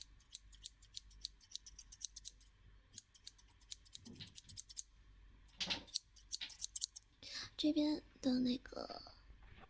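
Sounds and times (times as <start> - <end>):
scissors snipping hair during a haircut: 0.0 - 4.8, 5.9 - 7.0
speech: 7.6 - 9.2.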